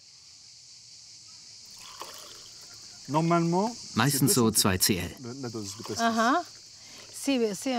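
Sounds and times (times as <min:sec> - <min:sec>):
faint steady hiss: 0:00.0 - 0:07.7
pastis pouring into a glass: 0:01.7 - 0:02.8, 0:05.6 - 0:06.2
speech: 0:03.1 - 0:06.6, 0:07.2 - 0:07.7.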